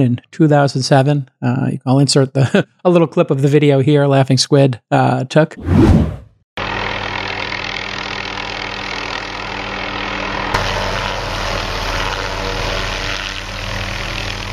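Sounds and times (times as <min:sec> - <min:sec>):
speech: 0:00.0 - 0:06.2
helicopter engine and rotors landing: 0:06.6 - 0:14.5.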